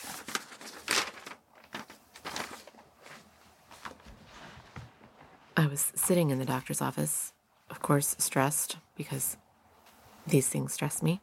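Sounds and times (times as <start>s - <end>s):
paper sliding across a page: 3.8s - 4.9s
speech: 5.6s - 7.3s, 7.9s - 9.4s, 10.3s - 11.2s.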